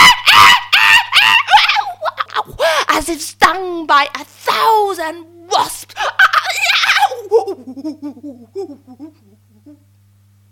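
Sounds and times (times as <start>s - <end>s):
people screaming as they flee: 0.0s - 2.1s, 6.2s - 7.2s
speech: 4.0s - 6.2s, 7.7s - 9.2s.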